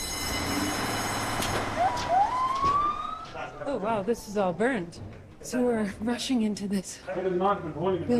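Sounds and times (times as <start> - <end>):
fire engine siren winding up: 0.0 - 4.7
street noise: 0.0 - 7.0
speech: 3.7 - 8.1.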